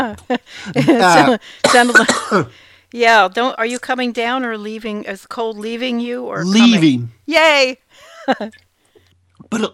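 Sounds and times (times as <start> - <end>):
laughter: 0.0 - 1.4
speech: 0.0 - 8.6, 9.5 - 9.7
person coughing: 0.8 - 2.5
person clearing throat: 1.0 - 2.5, 9.4 - 9.7.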